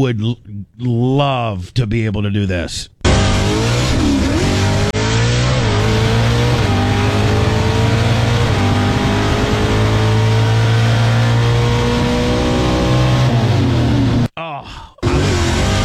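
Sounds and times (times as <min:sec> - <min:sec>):
speech: 0:00.0 - 0:03.7
pro stock drag car engine roaring while launching off the line in a wheelie: 0:03.0 - 0:14.3, 0:15.0 - 0:15.8.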